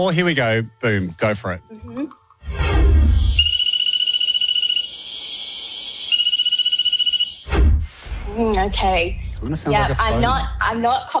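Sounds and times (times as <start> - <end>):
speech: 0.0 - 3.4, 8.4 - 11.1
nursery frog of genus Cophixalus calling in a pulsing trill: 3.3 - 7.5.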